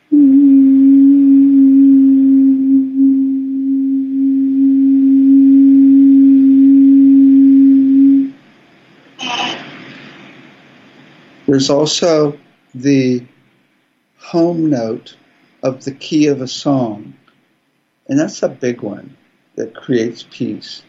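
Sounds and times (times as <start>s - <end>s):
steady low sine wave tone: 0.0s - 8.4s
brief burst of brighter noise: 9.2s - 11.8s
speech: 11.6s - 13.3s, 14.3s - 17.1s, 18.1s - 20.8s.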